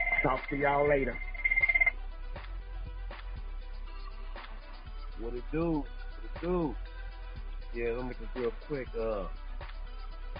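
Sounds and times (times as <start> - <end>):
electronic phone ringing at a workplace: 0.0 - 1.9
speech: 0.2 - 1.3, 5.2 - 6.9, 7.7 - 9.4.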